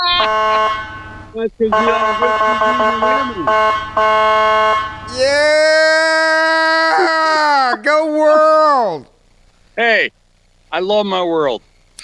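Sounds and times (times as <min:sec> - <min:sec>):
car horn honking: 0:00.0 - 0:05.4
speech: 0:01.4 - 0:05.7, 0:09.8 - 0:11.7
laughter: 0:05.1 - 0:09.0.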